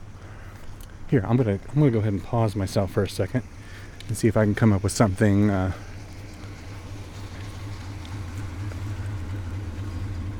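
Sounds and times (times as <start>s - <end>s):
car engine rumble passing by: 0.0s - 10.3s
speech: 1.1s - 5.9s.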